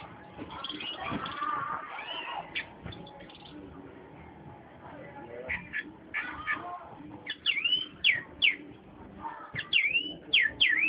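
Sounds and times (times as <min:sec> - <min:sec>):
Oriental magpie-robin singing: 0:00.6 - 0:03.5, 0:05.4 - 0:08.7, 0:09.5 - 0:10.8.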